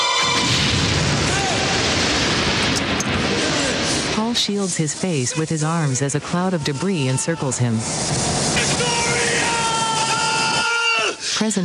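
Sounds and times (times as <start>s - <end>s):
teddy bear exploding with rumbling roar: 0.0s - 5.1s, 7.2s - 10.9s
speech: 4.4s - 8.3s, 11.4s - 11.6s.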